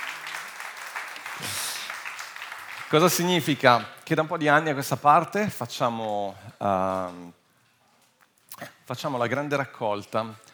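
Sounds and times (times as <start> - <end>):
audience applause at a church service: 0.0 - 3.9
speech: 2.9 - 7.4, 8.6 - 10.5.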